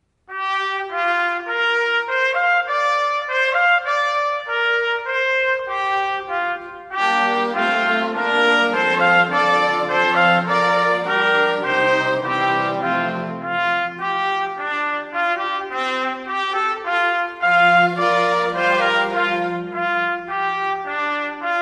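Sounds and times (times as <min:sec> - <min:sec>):
two trumpets: 0:00.3 - 0:21.6
string quartet playing: 0:06.5 - 0:14.2, 0:17.4 - 0:20.5.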